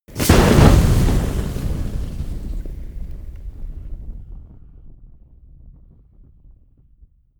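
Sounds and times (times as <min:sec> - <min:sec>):
large campfire flaring up: 0:00.1 - 0:05.8.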